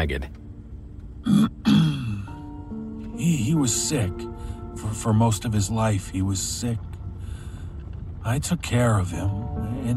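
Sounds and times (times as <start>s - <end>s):
speech: 0.0s - 0.4s, 1.2s - 1.5s, 3.2s - 6.9s, 8.2s - 9.9s
man clearing his throat: 1.2s - 2.2s.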